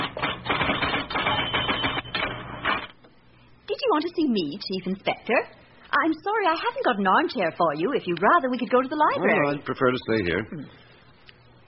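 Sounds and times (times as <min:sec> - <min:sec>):
electric typewriter typing: 0:00.0 - 0:02.9
speech: 0:03.9 - 0:10.8.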